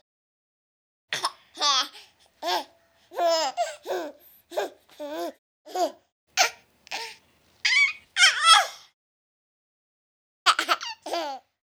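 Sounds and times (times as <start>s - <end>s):
baby laughing: 1.1s - 8.7s, 10.6s - 11.4s.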